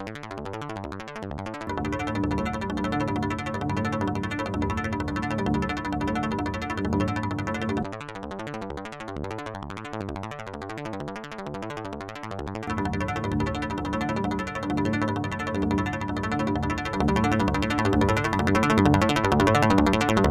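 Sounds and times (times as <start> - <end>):
filtered strings: 1.7 - 7.9, 12.7 - 20.2.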